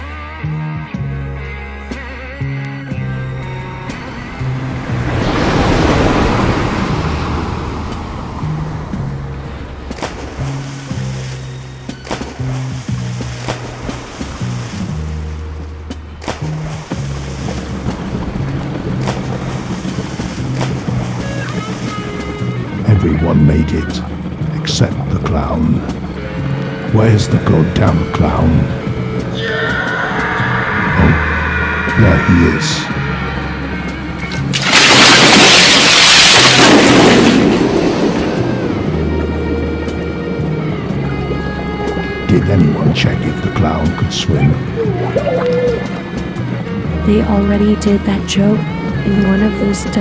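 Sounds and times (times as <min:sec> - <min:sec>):
jet ski engine roaring across tropical ocean waves: 0:00.0 - 0:49.9
tropical ocean surf and spray rushing: 0:03.2 - 0:22.9, 0:25.8 - 0:42.3
loud surge of splashing: 0:03.4 - 0:22.7, 0:29.6 - 0:40.7
speech: 0:23.4 - 0:24.1, 0:26.9 - 0:28.8, 0:32.0 - 0:33.0, 0:42.3 - 0:46.0, 0:47.1 - 0:49.9.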